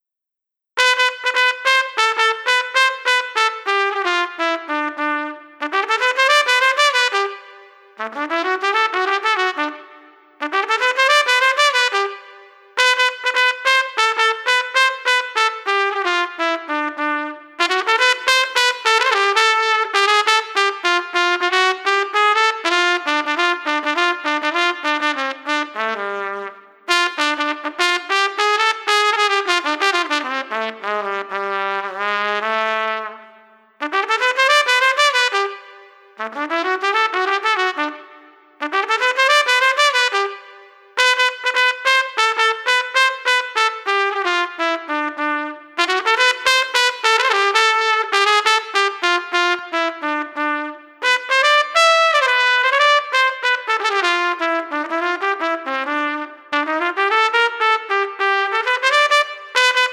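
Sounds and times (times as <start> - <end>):
street trumpet playing a jumping tune: 0.8 - 59.9.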